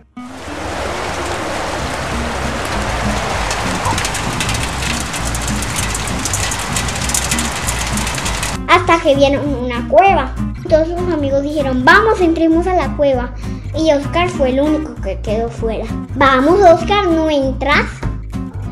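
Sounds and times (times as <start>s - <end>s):
steady dense rain pouring: 0.0s - 8.6s
speech: 9.0s - 18.0s.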